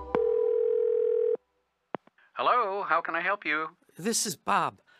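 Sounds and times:
telephone dial tone while placing a call: 0.1s - 1.4s
speech: 2.4s - 4.9s.

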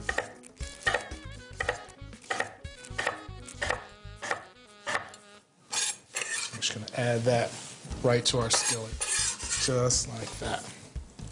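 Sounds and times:
knife chopping food into small quarter-inch chunks: 0.0s - 5.2s
speech: 7.0s - 10.8s.

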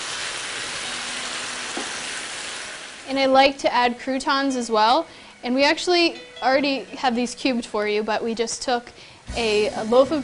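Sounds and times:
okra sautéing in a pan with bacon and its fat: 0.0s - 7.2s
speech: 3.1s - 10.2s.

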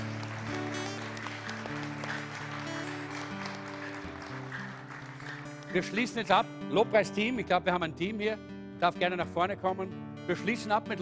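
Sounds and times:
audience applause: 0.0s - 6.3s
speech: 5.7s - 11.0s.

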